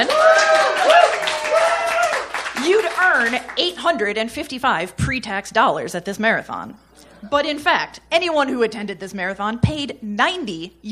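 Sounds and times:
live audience whoops and cheers: 0:00.0 - 0:02.4
live audience clapping: 0:00.0 - 0:03.7
speech: 0:03.3 - 0:10.8.

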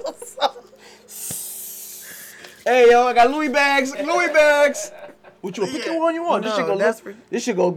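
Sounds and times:
laughter: 0:00.0 - 0:01.0, 0:02.9 - 0:07.0
voice imitating a spray paint can hissing: 0:01.1 - 0:02.4
speech: 0:02.6 - 0:07.7.

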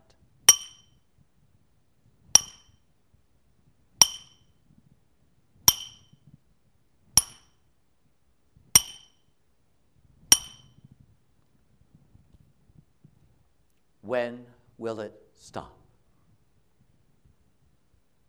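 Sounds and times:
hammer striking a nail into wood: 0:00.5 - 0:00.9, 0:02.4 - 0:02.8, 0:04.0 - 0:04.4, 0:05.7 - 0:06.2, 0:07.2 - 0:07.5, 0:08.8 - 0:09.2, 0:10.3 - 0:10.7
speech: 0:14.1 - 0:15.8.

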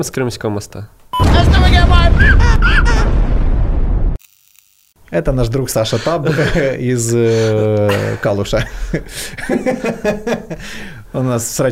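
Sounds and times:
speech: 0:00.0 - 0:03.2, 0:05.1 - 0:11.7
explosion sound effect with deep heavy rumble: 0:01.2 - 0:04.2
laughter: 0:02.2 - 0:03.2, 0:05.8 - 0:10.8.

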